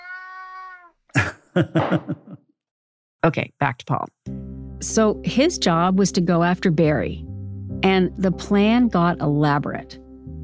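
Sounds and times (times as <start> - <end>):
cat meowing close to the microphone: 0.0 - 1.0
laughter: 1.2 - 2.4
speech: 1.2 - 2.4, 3.2 - 10.0.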